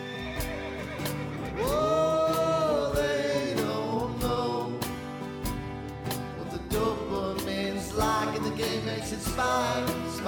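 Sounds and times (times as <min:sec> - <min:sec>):
horse neighing in a wavering whinny: 0:00.0 - 0:03.0
steady musical backing with soft rhythmic thumps: 0:00.0 - 0:10.2.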